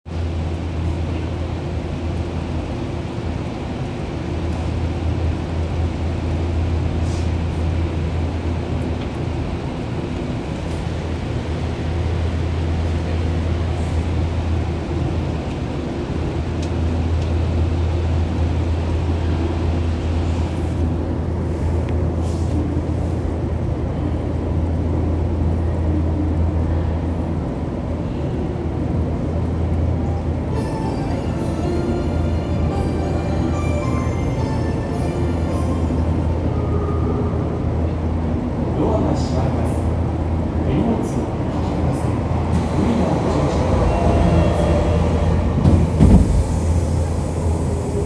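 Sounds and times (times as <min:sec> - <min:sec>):
Tozai Line train sounds: 0:00.1 - 0:48.0.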